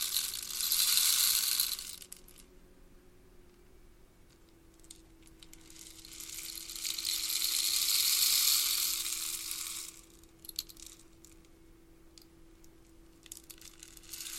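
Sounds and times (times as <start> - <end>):
rain stick pellets rattling: 0.0 - 2.5, 4.8 - 11.4, 13.2 - 14.3
faint steady hum: 0.0 - 14.3.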